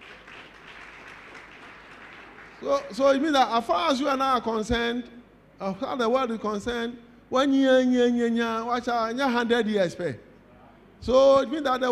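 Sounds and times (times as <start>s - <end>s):
audience clapping: 0.0s - 3.0s
speech: 2.6s - 10.3s, 11.0s - 11.9s.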